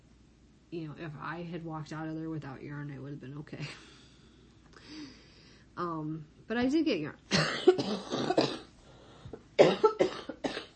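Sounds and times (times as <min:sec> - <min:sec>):
speech: 0:00.7 - 0:03.9, 0:05.8 - 0:08.6
person coughing: 0:07.3 - 0:08.7, 0:09.6 - 0:10.7.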